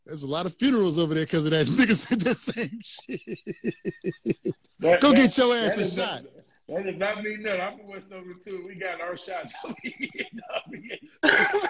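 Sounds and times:
speech: 0.1 - 11.6
laughter: 1.7 - 6.4, 9.5 - 11.6
man coughing: 9.5 - 11.6.

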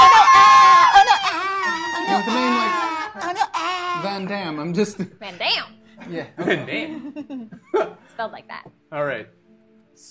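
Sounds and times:
person imitating a creature's cute squeaky screaming: 0.0 - 4.2
laughter: 1.0 - 4.3, 6.0 - 8.0
speech: 4.8 - 9.4, 10.0 - 10.1.

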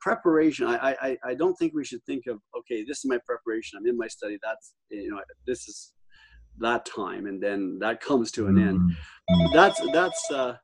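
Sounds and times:
speech: 0.0 - 6.0, 6.6 - 10.6
telephone ringing with a warbling electronic tone: 9.3 - 10.4.

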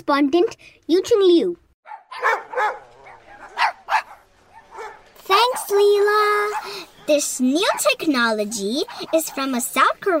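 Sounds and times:
speech: 0.0 - 1.6, 2.2 - 2.8, 5.3 - 10.1
dog barking: 1.8 - 9.6.

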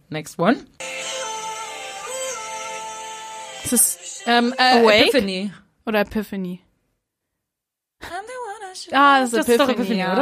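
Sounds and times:
speech: 0.1 - 0.9, 3.7 - 6.7, 8.8 - 10.2
pop song played in reverse: 0.8 - 5.5.

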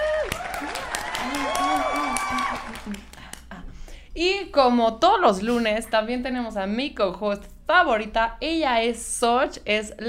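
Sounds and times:
people whooping: 0.0 - 3.1
applause sound effect: 0.0 - 3.5
speech: 4.2 - 10.0.

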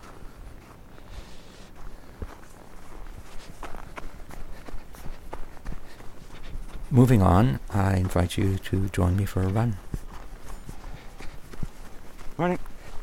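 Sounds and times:
feet crunching over fresh snow in winter: 0.0 - 13.0
speech: 6.9 - 9.9, 12.4 - 12.7.

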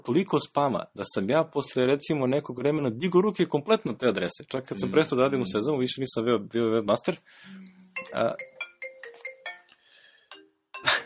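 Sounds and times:
speech: 0.0 - 8.5
phone ringtone of bright electronic tones: 7.5 - 11.0.

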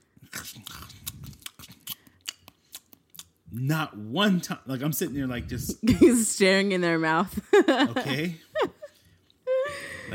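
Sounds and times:
wet open-mouthed chewing: 0.0 - 3.5
speech: 3.5 - 8.4
laughter: 7.4 - 8.9.

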